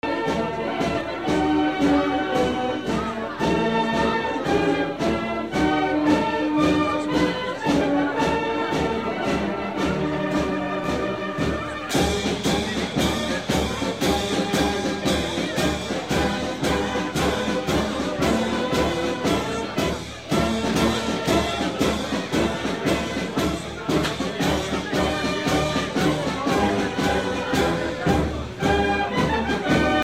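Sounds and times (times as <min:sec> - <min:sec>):
band playing in a town square during the holidays: 0:00.0 - 0:30.0.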